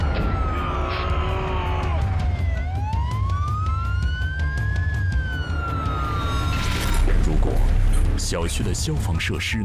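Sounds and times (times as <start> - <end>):
ambulance siren wailing on a blocked road into a residential compound: 0.0 - 7.0
speech: 8.3 - 9.6.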